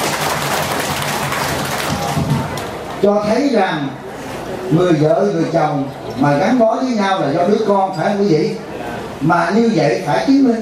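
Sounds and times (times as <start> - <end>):
audience applauding at a meditation retreat talk: 0.0 - 2.8
speech: 3.0 - 10.5.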